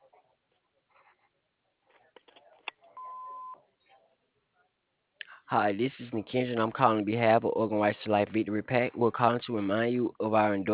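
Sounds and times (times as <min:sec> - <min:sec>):
answering machine message tone beep: 0:03.0 - 0:03.6
speech: 0:05.5 - 0:10.7.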